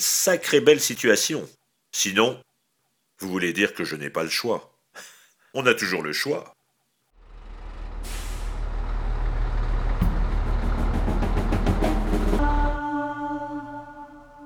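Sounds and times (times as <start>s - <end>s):
speech: 0.0s - 2.5s, 3.2s - 6.6s
truck engine rumble driving on a road at night: 7.2s - 12.8s
truck air-brake hiss: 8.0s - 8.8s
steady tones: 8.5s - 14.4s.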